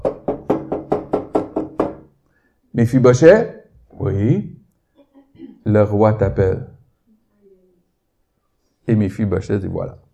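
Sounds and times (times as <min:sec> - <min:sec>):
firm knocks on a wooden door: 0:00.0 - 0:02.1
speech: 0:02.8 - 0:04.5, 0:05.6 - 0:06.7, 0:08.9 - 0:10.0.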